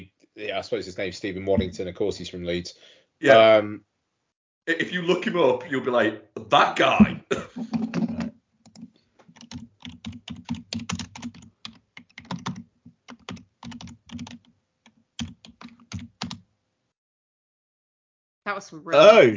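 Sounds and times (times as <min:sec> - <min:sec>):
speech: 0:00.4 - 0:03.9, 0:04.7 - 0:07.3, 0:18.6 - 0:19.3
loud rapid typing on a computer keyboard: 0:08.6 - 0:16.4.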